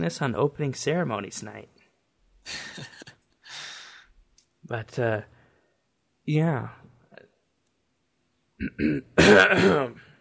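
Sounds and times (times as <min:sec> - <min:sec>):
speech: 0:00.0 - 0:01.8, 0:02.4 - 0:03.0, 0:04.7 - 0:05.4, 0:06.3 - 0:06.9, 0:08.6 - 0:10.1
man clearing his throat: 0:08.6 - 0:10.0
man's rasping cough-like rumble: 0:08.6 - 0:10.0.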